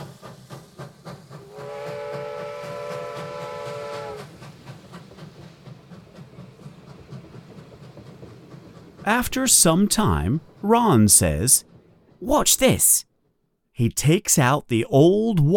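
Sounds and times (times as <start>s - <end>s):
steam train chugging as it pulls away from a station in London: 0.0s - 13.0s
steam train whistle blowing: 1.4s - 4.3s
speech: 9.0s - 13.1s, 13.8s - 15.5s.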